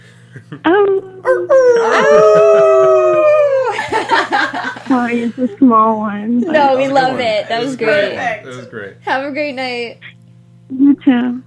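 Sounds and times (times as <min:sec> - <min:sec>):
speech: 0:00.4 - 0:02.6, 0:04.9 - 0:10.1, 0:10.7 - 0:11.4
person imitating a wolf howl: 0:01.2 - 0:03.8
laughter: 0:01.7 - 0:05.6.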